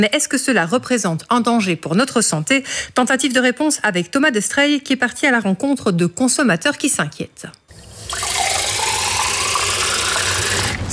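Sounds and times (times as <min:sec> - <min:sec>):
speech: 0:00.0 - 0:08.6
water gushing from a kitchen tap: 0:07.7 - 0:10.8.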